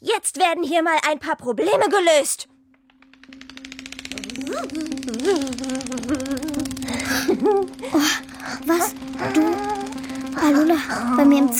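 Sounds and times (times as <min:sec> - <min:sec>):
speech: 0:00.1 - 0:02.5, 0:04.5 - 0:09.8, 0:10.4 - 0:11.5
large bumblebee buzzing in flight: 0:02.9 - 0:11.5
rising and falling vocal sounds: 0:04.1 - 0:11.5.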